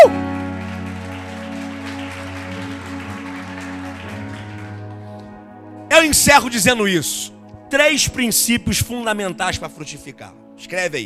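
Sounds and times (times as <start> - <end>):
crowd clapping: 0.0 - 5.4
speech: 6.0 - 11.0.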